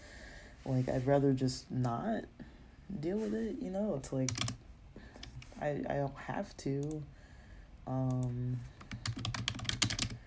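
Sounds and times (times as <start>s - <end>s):
speech: 0.7s - 4.6s, 5.6s - 7.2s, 7.9s - 9.3s
computer keyboard being typed on: 4.2s - 4.6s, 8.0s - 10.2s.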